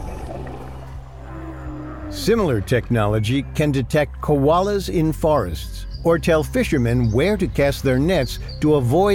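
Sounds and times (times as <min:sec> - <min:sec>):
deep droning whale call in the ocean: 0:00.0 - 0:02.7
speech: 0:02.2 - 0:09.1.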